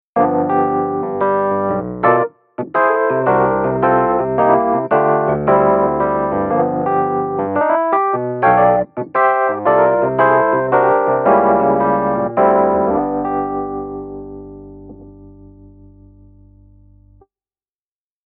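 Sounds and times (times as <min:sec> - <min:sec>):
classic electric piano: 0:00.2 - 0:17.3.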